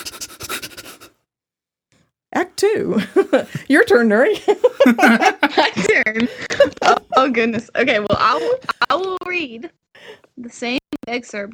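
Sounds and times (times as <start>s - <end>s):
voice imitating a monster panting under a bed: 0.0s - 1.1s
speech: 2.4s - 11.5s
laughter: 3.0s - 9.2s.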